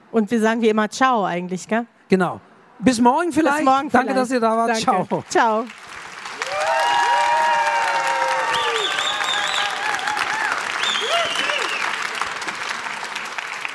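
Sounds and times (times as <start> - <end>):
speech: 0.1 - 5.8
live audience applause at a trade fair: 4.8 - 13.7
voices cheering and calling out: 6.4 - 12.3.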